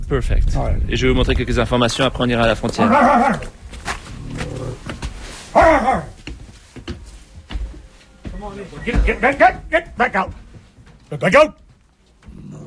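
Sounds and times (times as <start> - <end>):
speech: 0.1 - 3.6, 8.4 - 10.4, 11.1 - 11.6
German shepherd dogs barking: 5.5 - 6.2.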